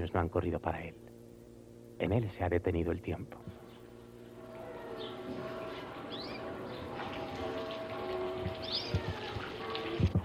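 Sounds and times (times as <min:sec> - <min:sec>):
speech: 0:00.0 - 0:01.2, 0:02.0 - 0:03.6
garden bird chirps: 0:04.5 - 0:09.4
garden fountain water flowing: 0:05.0 - 0:10.2.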